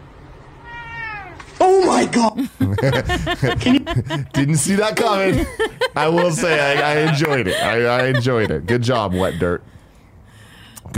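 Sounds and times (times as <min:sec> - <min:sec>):
drawn-out cat meow: 0:00.6 - 0:01.6
speech: 0:02.0 - 0:09.8
laughter: 0:02.1 - 0:09.6.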